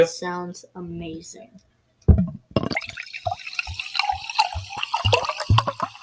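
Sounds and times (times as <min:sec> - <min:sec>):
speech: 0:00.0 - 0:02.8
sparkling water dripping and trickling fizzily: 0:02.7 - 0:06.0
sparkling water poured and spilled with a hissing splash: 0:02.7 - 0:06.0.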